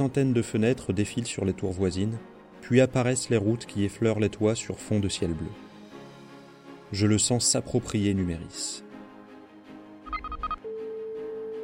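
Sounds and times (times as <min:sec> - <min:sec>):
speech: 0:00.0 - 0:05.7, 0:06.9 - 0:08.9
soft music: 0:00.0 - 0:11.6
electronic ringing pulses and sustained tone: 0:10.0 - 0:11.6.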